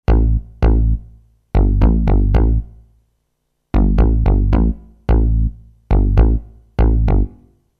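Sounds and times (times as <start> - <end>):
D-50 octave synth bass: 0.0 - 2.9, 3.7 - 7.6.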